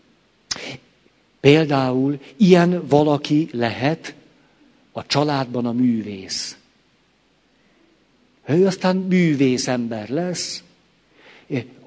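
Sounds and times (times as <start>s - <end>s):
person sneezing: 0.5s - 0.8s
speech: 1.4s - 4.2s, 5.0s - 6.6s, 8.5s - 10.7s, 11.5s - 11.8s.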